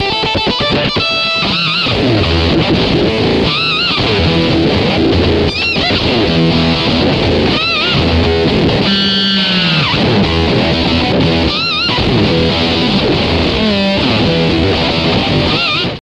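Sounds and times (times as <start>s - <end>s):
guitar playing loops: 0.0s - 16.0s.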